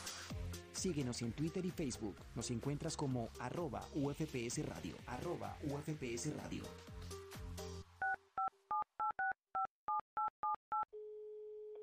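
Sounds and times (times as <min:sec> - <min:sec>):
speech: 0:00.8 - 0:07.2
touch-tone keypad beeps dialing a phone number: 0:08.0 - 0:10.8.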